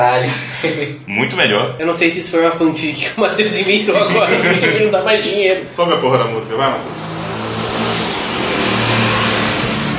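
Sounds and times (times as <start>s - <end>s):
speech: 0.0s - 7.3s
laughter: 0.1s - 1.0s, 3.6s - 5.3s
motorcycle engine roaring while passing by outside: 5.4s - 9.9s.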